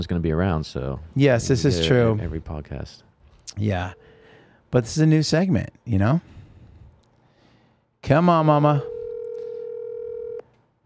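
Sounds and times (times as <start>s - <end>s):
speech: 0.0s - 4.1s, 4.7s - 6.4s, 8.0s - 8.9s
faint noise: 0.0s - 10.8s
steady electronic phone ringback tone: 8.9s - 10.4s.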